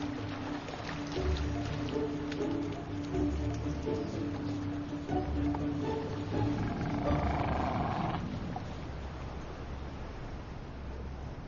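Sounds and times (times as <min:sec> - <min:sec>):
rough wind-like outdoor background: 0:00.0 - 0:11.4
grey seals and common seals moaning in a park of sandbanks and wet meadows: 0:05.3 - 0:08.9.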